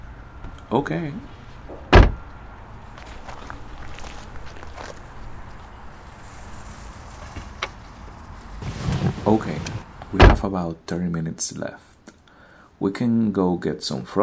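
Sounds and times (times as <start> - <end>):
speech: 0.7 - 1.4, 10.4 - 11.9, 12.8 - 14.2
car door slamming shut: 1.7 - 10.6.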